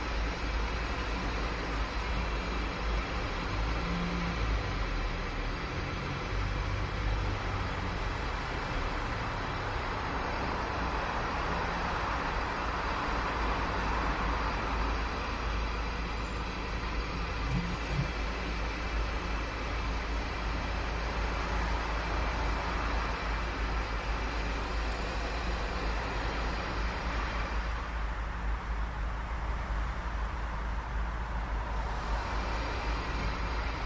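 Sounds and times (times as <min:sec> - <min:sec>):
traffic on a busy road: 0:00.0 - 0:33.8.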